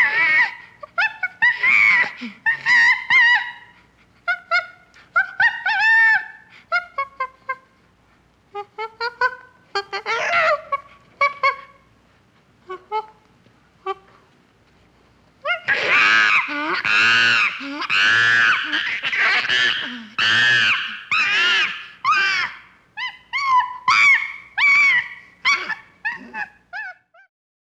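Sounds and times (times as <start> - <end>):
chimpanzee screeching: 0.0 - 3.7, 5.2 - 6.5, 9.9 - 11.6, 15.5 - 27.3.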